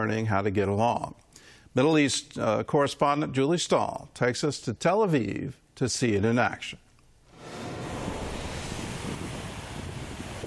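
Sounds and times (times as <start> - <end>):
speech: 0.0 - 1.2, 1.8 - 6.8
Mediterranean Sea surf breaking at a beach in Tel Aviv on a sunny day: 7.3 - 10.4
wind buffeting the microphone: 7.3 - 10.4.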